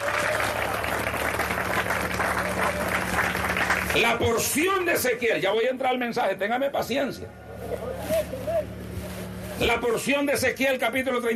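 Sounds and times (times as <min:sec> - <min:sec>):
church congregation applauding during a service: 0:00.0 - 0:04.9
speech: 0:04.0 - 0:07.9, 0:09.6 - 0:11.3.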